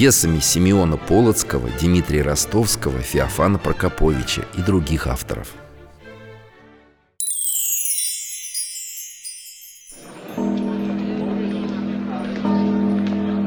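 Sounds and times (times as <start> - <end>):
speech: 0.0 - 5.6
large church bell ringing: 7.3 - 13.2.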